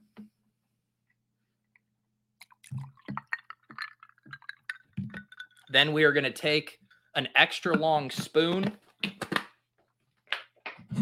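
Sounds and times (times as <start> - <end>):
mountain water poured into a glass with coffee concentrate: 2.4 - 5.8
speech: 5.7 - 8.8.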